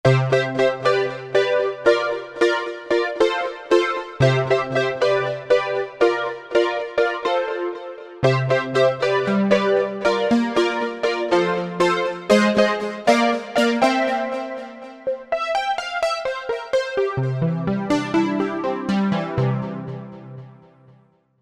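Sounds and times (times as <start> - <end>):
synth pop piano: 0.1 - 20.6.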